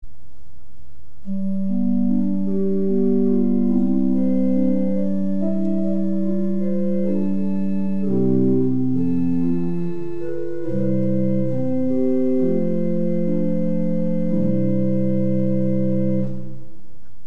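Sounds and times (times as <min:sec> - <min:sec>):
pipe organ with Holpijp 8' and Prestant 8' stops: 0:01.2 - 0:17.2.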